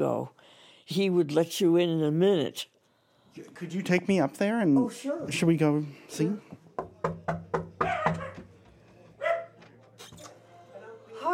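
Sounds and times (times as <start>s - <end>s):
speech: 0.0s - 2.7s, 3.4s - 7.5s
small dog barking in an apartment: 7.8s - 8.5s, 9.2s - 9.6s.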